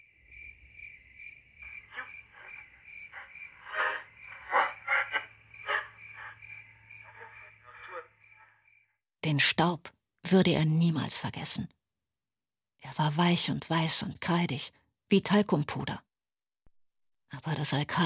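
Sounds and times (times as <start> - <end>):
cricket chirping in a high continuous trill: 0.0 - 9.0
speech: 9.3 - 11.8, 12.8 - 16.1, 17.3 - 18.0.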